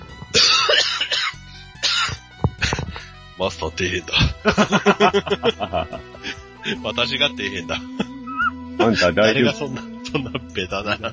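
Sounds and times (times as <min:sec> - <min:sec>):
person coughing from choking: 0:00.4 - 0:03.0
speech: 0:03.4 - 0:08.1, 0:08.8 - 0:11.1
laughter: 0:04.1 - 0:06.9, 0:08.8 - 0:11.1.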